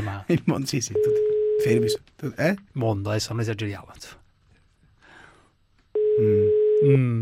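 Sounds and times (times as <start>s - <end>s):
speech: 0.1s - 4.2s, 6.2s - 7.2s
telephone ringing in a radio studio: 1.0s - 2.0s, 6.0s - 6.8s.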